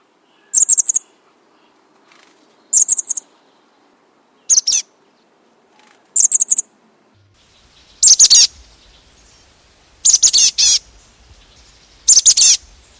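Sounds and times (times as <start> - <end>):
chestnut-backed chickadee giving high buzzy call notes: 0.4 - 1.1, 2.7 - 3.2, 4.5 - 4.9, 6.2 - 6.7, 7.4 - 12.9.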